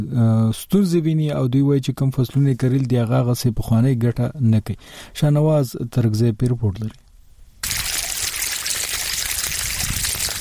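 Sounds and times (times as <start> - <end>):
speech: 0.0 - 7.0
water flowing from a small pipe irrigating millet and okra fields: 7.6 - 10.4.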